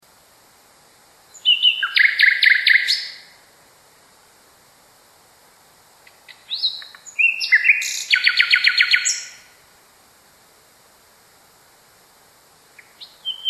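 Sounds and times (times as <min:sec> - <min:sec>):
Common nightingale singing: 0:01.3 - 0:03.4, 0:06.0 - 0:09.6, 0:12.7 - 0:13.4.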